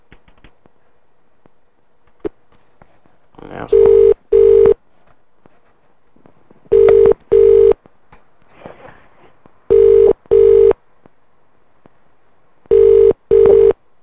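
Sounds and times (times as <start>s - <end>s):
faint noise: 0.0s - 14.0s
telephone ringing as a call is put through to a hotel restaurant: 3.7s - 4.8s, 6.7s - 7.8s, 9.7s - 10.8s, 12.7s - 13.8s.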